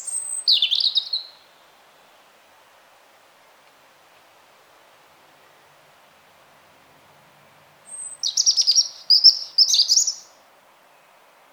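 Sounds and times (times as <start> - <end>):
European robin singing: 0.0 - 1.6, 7.8 - 11.2.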